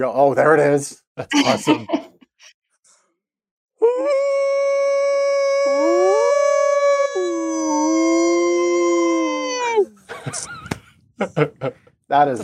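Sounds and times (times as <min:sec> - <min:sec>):
speech: 0:00.0 - 0:02.0, 0:11.2 - 0:12.4
laughter: 0:01.3 - 0:02.2, 0:10.1 - 0:11.9
person imitating a dog's howl: 0:03.8 - 0:10.0.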